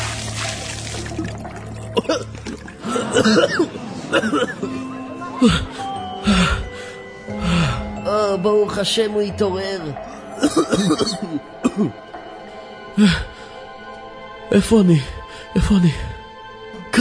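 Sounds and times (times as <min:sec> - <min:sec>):
water poured from a jug splashing onto someone: 0:00.0 - 0:03.0
speech: 0:02.0 - 0:06.6, 0:08.4 - 0:12.1, 0:13.0 - 0:13.3, 0:14.5 - 0:16.1.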